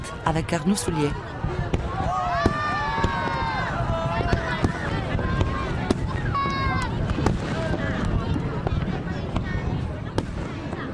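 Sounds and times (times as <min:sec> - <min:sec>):
crowd cheering at midnight for Tet in Hanoi: 0:00.0 - 0:08.8
speech: 0:00.3 - 0:01.6
fireworks at midnight for Tet in Hanoi: 0:01.3 - 0:10.9.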